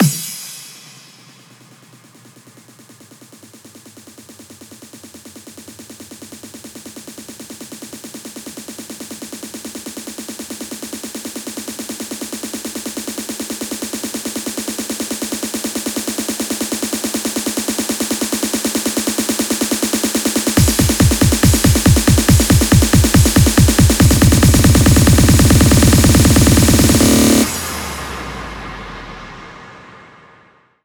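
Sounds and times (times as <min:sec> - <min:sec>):
hands up and trance fill at 140 bpm: 0:00.0 - 0:04.1, 0:08.9 - 0:28.6.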